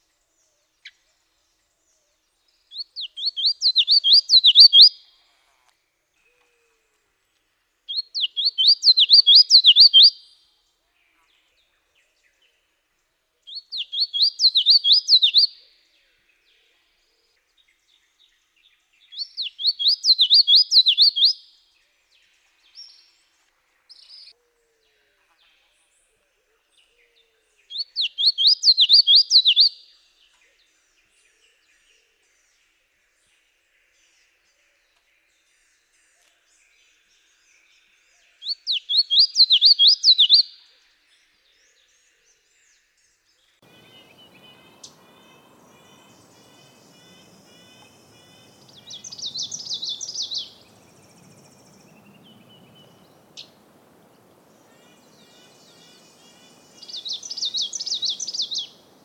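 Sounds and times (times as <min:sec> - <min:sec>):
yellowthroat singing: 0:02.6 - 0:05.1, 0:07.9 - 0:10.3, 0:13.5 - 0:16.7, 0:17.4 - 0:21.4, 0:26.8 - 0:32.7, 0:33.3 - 0:40.6, 0:41.5 - 0:59.0.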